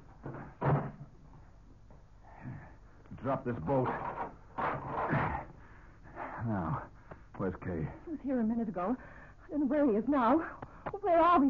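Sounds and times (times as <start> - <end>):
speech: 3.2 - 4.2, 6.4 - 11.4
mission door in San Linda knocking or creaking as it moves: 3.7 - 5.5.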